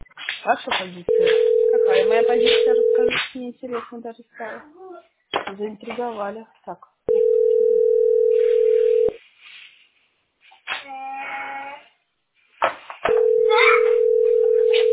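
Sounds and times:
speech: 0:00.4 - 0:04.8, 0:05.5 - 0:07.2
telephone ringback tone for unanswered call: 0:01.1 - 0:03.1, 0:07.1 - 0:09.2, 0:13.1 - 0:14.9.

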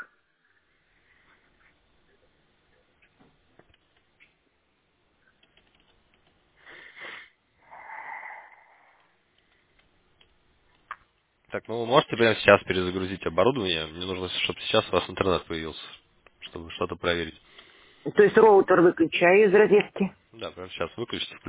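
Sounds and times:
chicken hissing: 0:06.6 - 0:09.0
speech: 0:11.5 - 0:21.4.

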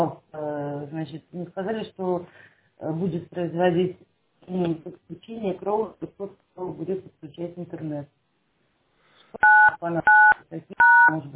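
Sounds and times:
speech: 0:00.0 - 0:00.2, 0:00.8 - 0:08.2, 0:09.3 - 0:11.3
telephone keypad tones on a phone line during a phone call: 0:09.4 - 0:11.1.

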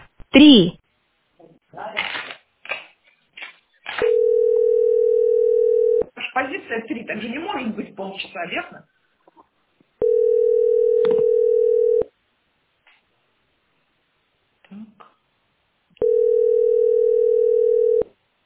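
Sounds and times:
speech: 0:00.4 - 0:00.8, 0:06.8 - 0:08.9
telephone ringback tone while waiting in a phone queue: 0:04.0 - 0:06.0, 0:10.0 - 0:12.1, 0:16.0 - 0:18.1.

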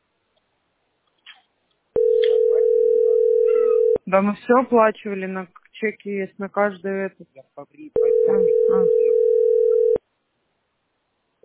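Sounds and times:
telephone dial tone while a call is being placed: 0:02.0 - 0:04.0, 0:08.0 - 0:10.0
speech: 0:04.1 - 0:09.4.

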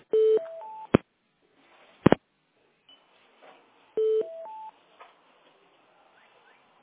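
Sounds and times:
telephone keypad beeps during a store call transfer: 0:00.2 - 0:01.0, 0:04.0 - 0:04.7.

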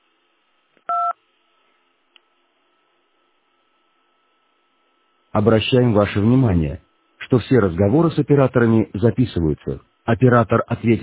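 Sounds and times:
faint hum: 0:00.0 - 0:11.0
touch-tone key press while dialing an extension number: 0:00.9 - 0:01.1
speech: 0:05.4 - 0:11.0.

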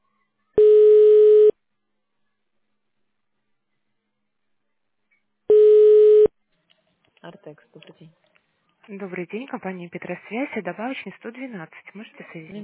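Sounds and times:
telephone ringback tone while a call is transferred to a specialist: 0:00.6 - 0:01.5, 0:05.5 - 0:06.3
speech: 0:07.3 - 0:12.6.

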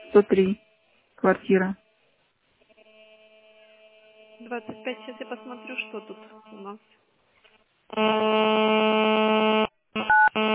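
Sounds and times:
speech: 0:00.1 - 0:01.8, 0:04.4 - 0:07.0, 0:07.9 - 0:09.4
electronic buzz on a phone line: 0:02.6 - 0:06.8, 0:07.9 - 0:10.5
phone keypad beep: 0:10.1 - 0:10.3.

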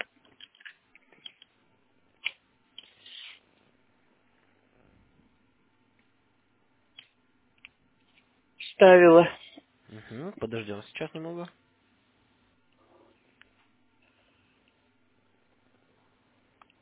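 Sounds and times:
handling and scraping of a yellow internet cable: 0:02.2 - 0:03.4
speech: 0:08.8 - 0:09.4, 0:10.1 - 0:11.6.

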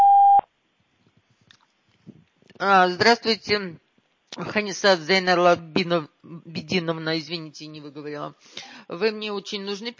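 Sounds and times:
voicemail beep tone on a phone line: 0:00.0 - 0:00.4
speech: 0:02.6 - 0:03.8, 0:04.4 - 0:09.9.

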